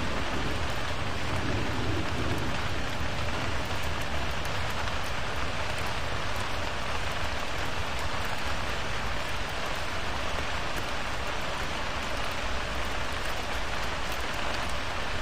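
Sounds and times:
low thunder rumble: 0.0 - 4.7
heavy rain: 0.0 - 15.2.

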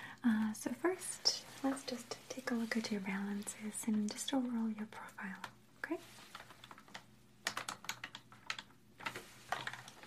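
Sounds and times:
speech: 0.6 - 6.3
password being typed on a computer keyboard: 6.3 - 10.0.

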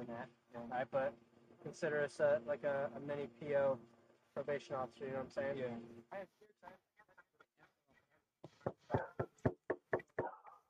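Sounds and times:
speech: 0.0 - 6.9
knocking on a door: 8.4 - 10.4.

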